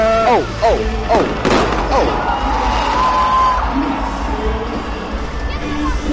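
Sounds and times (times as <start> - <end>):
large crowd cheering, whooping and shouting: 0.0 - 6.1
fireworks bursting: 1.1 - 3.6.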